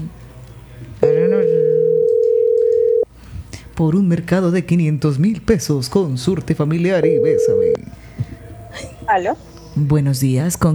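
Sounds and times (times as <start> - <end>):
telephone ringback tone on an outgoing call: 1.0 - 3.1, 7.0 - 7.8
speech: 3.8 - 7.9, 8.8 - 10.7.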